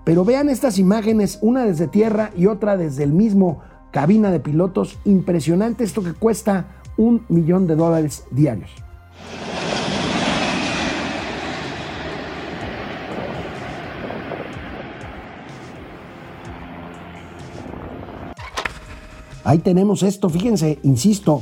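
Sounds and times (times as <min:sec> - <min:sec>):
speech: 0:00.1 - 0:09.4, 0:19.5 - 0:21.4
DC-10 firefighting jet airliner flying low overhead: 0:09.2 - 0:18.6.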